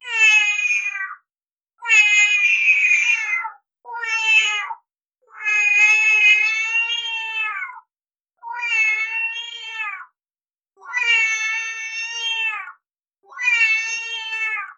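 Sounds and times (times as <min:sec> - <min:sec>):
sci-fi cat meow: 0:00.0 - 0:10.2, 0:10.8 - 0:14.7.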